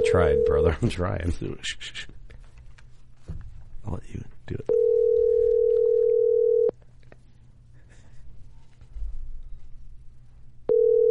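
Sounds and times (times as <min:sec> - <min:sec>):
telephone ringing tone on an unanswered call: 0:00.0 - 0:00.6, 0:04.7 - 0:06.7, 0:10.7 - 0:11.0
speech: 0:00.0 - 0:02.1, 0:03.8 - 0:04.8
faint noise: 0:00.0 - 0:11.0.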